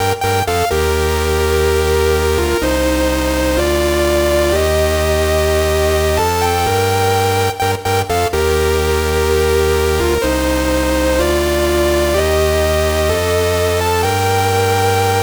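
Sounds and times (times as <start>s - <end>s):
synth loop in G minor: 0.0s - 15.2s.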